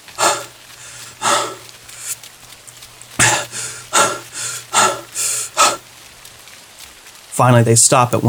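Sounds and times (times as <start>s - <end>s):
heavy rhythmic panting breaths while running: 0.0s - 2.3s, 3.2s - 5.9s
speech: 7.4s - 8.2s.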